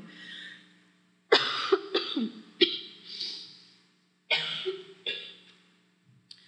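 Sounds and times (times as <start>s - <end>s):
faint steady hum: 0.0s - 6.4s
harsh coughing: 1.3s - 3.4s, 4.3s - 5.3s.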